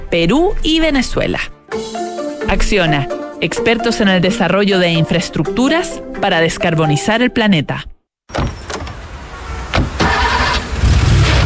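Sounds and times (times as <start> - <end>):
speech: 0.1 - 8.5
car engine cranking and starting: 8.6 - 11.4.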